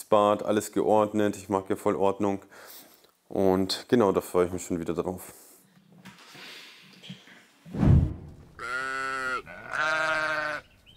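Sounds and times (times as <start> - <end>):
speech: 0.0 - 5.4
thump: 7.7 - 8.6
sheep bleating: 8.6 - 10.7.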